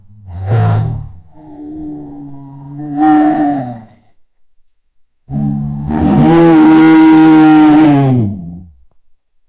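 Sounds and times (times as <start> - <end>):
bear roaring and growling loudly: 0.1 - 4.0, 5.3 - 8.5.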